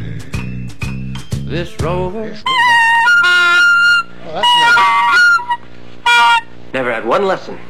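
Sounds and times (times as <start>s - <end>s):
speech: 1.5s - 2.6s, 7.2s - 7.6s
duck call being blown: 2.4s - 6.6s.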